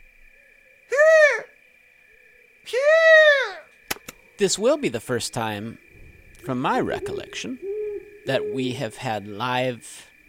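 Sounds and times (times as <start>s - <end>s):
faint steady tone: 0.0s - 10.2s
person imitating a short-eared owl call: 0.9s - 1.6s, 2.7s - 3.7s, 6.4s - 9.0s
speech: 4.4s - 10.1s.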